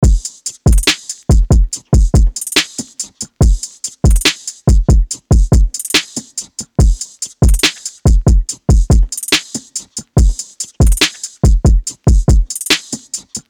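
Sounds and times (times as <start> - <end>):
drum loop at 142 BPM: 0.0 - 13.4.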